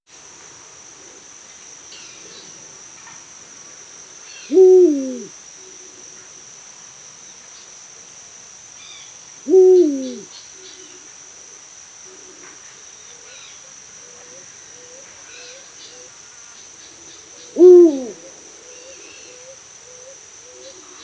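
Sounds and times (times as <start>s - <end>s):
eagle owl hooting at dusk: 4.4s - 5.3s, 9.4s - 11.0s, 17.4s - 20.1s.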